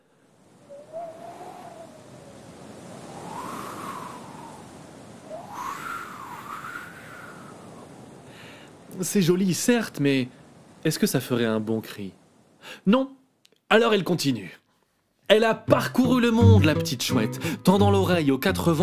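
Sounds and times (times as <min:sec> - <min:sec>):
wind swirling and whistling through tree branches: 0:00.0 - 0:12.7
speech: 0:09.0 - 0:14.6, 0:15.3 - 0:18.8.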